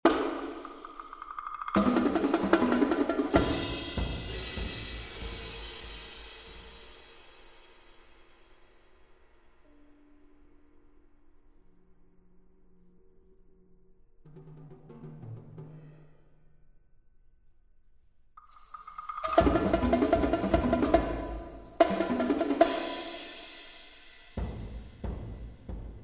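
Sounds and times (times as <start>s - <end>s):
polyrhythmic music: 0.0s - 6.2s, 18.4s - 25.0s.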